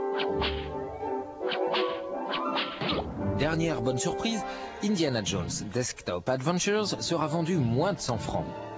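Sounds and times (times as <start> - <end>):
video game whip cracks: 0.1 - 0.8, 1.4 - 3.2
speech: 3.4 - 8.6.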